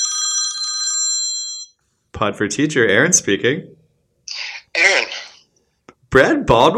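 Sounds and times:
telephone bell ringing in a bright metallic trill: 0.0s - 1.8s
speech: 2.2s - 3.8s, 6.2s - 6.7s.

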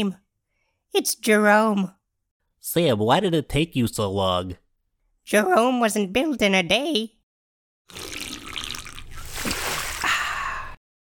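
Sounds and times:
speech: 0.0s - 0.2s, 0.9s - 2.0s, 2.6s - 4.6s, 5.3s - 7.2s, 7.9s - 8.1s
liquid splashing onto the floor: 8.0s - 10.1s.

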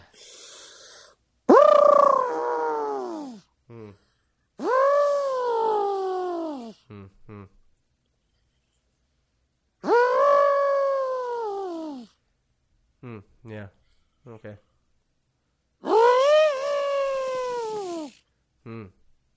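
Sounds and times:
person imitating an elephant trumpeting: 1.5s - 4.0s, 4.6s - 7.5s, 9.8s - 12.2s, 15.8s - 19.0s.

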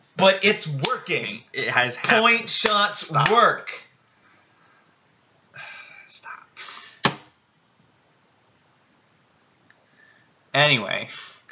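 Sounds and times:
speech: 0.2s - 3.8s, 5.6s - 6.4s, 10.6s - 11.4s
hand slapping a table: 7.0s - 7.3s.

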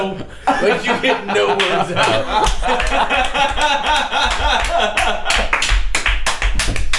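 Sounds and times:
people chuckling: 0.0s - 5.6s
speech: 0.0s - 5.7s
group clapping and tapping: 1.3s - 6.9s.

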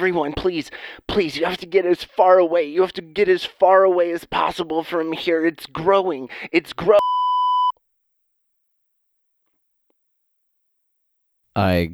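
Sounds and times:
speech: 0.0s - 7.2s, 11.6s - 11.9s
phone call voicemail electronic beep: 7.0s - 7.7s.

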